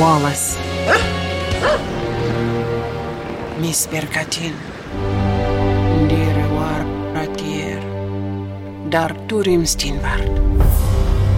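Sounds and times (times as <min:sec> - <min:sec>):
speech: 0:00.0 - 0:02.4, 0:03.6 - 0:05.3, 0:08.9 - 0:10.8
steady tonal music: 0:00.0 - 0:11.3
dog barking: 0:00.8 - 0:02.0.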